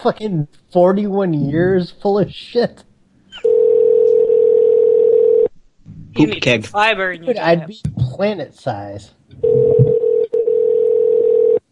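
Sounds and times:
speech: 0.0 - 3.5, 6.2 - 9.8
telephone line tone on an unanswered call: 3.4 - 5.5, 9.4 - 11.6.

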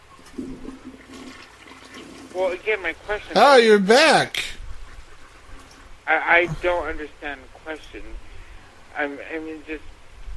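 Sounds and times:
toilet flushing: 1.0 - 2.4
speech: 2.4 - 4.4, 6.1 - 8.2, 9.0 - 9.9.

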